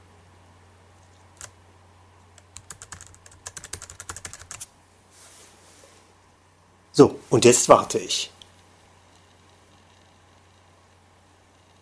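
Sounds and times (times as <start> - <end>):
low steady hum: 0.0 - 11.7
keys clicking on a computer keyboard: 2.4 - 4.7
speech: 7.0 - 8.4.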